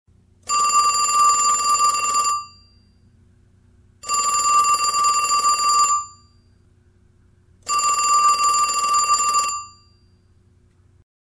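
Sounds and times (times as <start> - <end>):
long ringing ringtone: 0.5 - 2.8, 4.0 - 6.4, 7.7 - 10.0.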